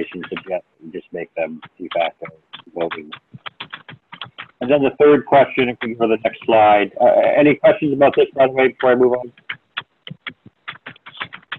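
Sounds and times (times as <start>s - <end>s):
speech: 0.0s - 3.2s, 4.7s - 9.5s
typing on a computer keyboard: 0.2s - 0.5s, 1.6s - 4.7s, 9.2s - 11.5s.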